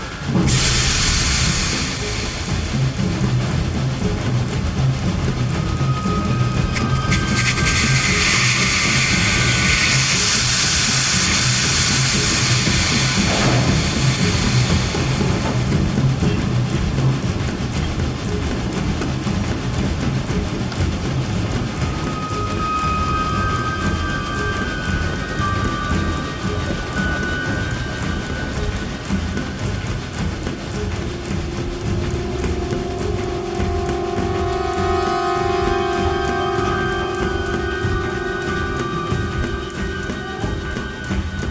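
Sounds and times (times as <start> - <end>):
steam train with brakes engaged releasing steam: 0.0 - 19.4, 21.8 - 41.5
low rhythmic rumbling: 0.0 - 41.5.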